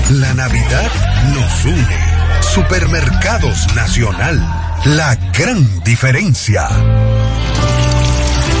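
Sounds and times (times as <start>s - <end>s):
speech: 0.2s - 7.3s
laughter: 0.3s - 5.9s
drinking water pouring from a tap in a home: 7.5s - 8.5s.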